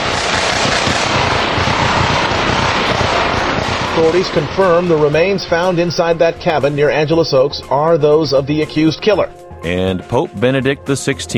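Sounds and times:
rapid bursts of gunfire in a shootout: 0.0 - 7.3
constant loud roar: 0.0 - 8.9
speech: 4.0 - 11.3.

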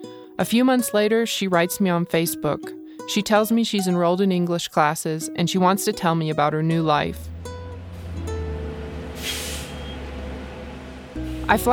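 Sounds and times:
speech: 0.4 - 7.3, 11.5 - 11.7
city bus engine rumble with whining drone: 6.4 - 11.7
city bus air brakes hissing: 7.8 - 11.6.

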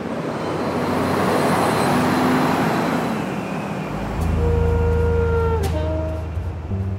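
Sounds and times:
traffic rumbling across a highway bridge: 0.0 - 6.9
heavier vehicle droning low: 3.8 - 6.9.

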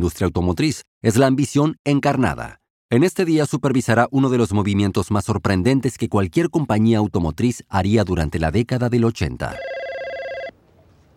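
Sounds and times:
speech: 0.0 - 9.8
telephone bell ringing: 9.6 - 10.6.

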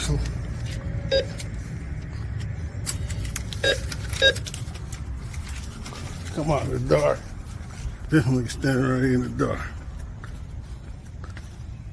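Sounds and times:
traffic rumble: 0.0 - 11.9
speech: 0.1 - 0.4, 6.4 - 7.3, 8.1 - 9.8
short electronic beeps: 1.1 - 1.4.

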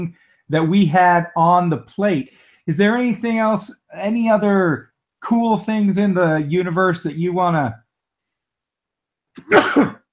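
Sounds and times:
speech: 0.0 - 7.8, 9.4 - 10.0
sneeze: 9.4 - 10.1.

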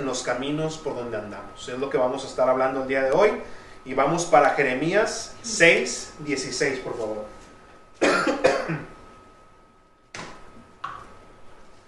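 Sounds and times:
speech: 0.1 - 7.4
person coughing harshly: 8.0 - 9.0.

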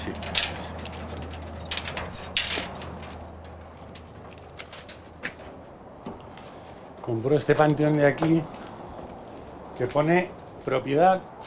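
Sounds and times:
keys jangling at a family tomb in a cemetery: 0.0 - 5.2
speech: 7.1 - 8.6, 9.8 - 11.3.

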